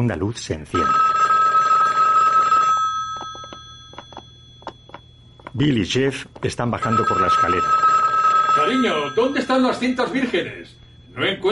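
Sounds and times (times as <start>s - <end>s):
speech: 0.0s - 1.1s, 5.6s - 8.0s, 8.6s - 11.5s
telephone second line ringing: 0.8s - 11.5s
faint clicks and taps: 3.2s - 5.6s.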